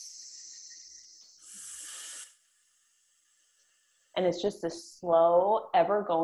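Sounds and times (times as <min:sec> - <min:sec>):
person exhaling with a snake-like hiss in a breathing exercise: 0:00.0 - 0:02.4
person breathing in through the nose in a breathing exercise: 0:01.4 - 0:02.4
speech: 0:04.2 - 0:06.2.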